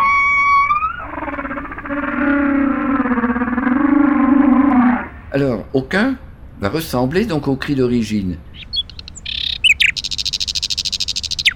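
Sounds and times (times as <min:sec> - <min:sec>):
nightingale song slowed down electronically by a detector in time-expansion mode: 0:00.0 - 0:05.3, 0:08.4 - 0:11.5
speech: 0:05.4 - 0:08.5.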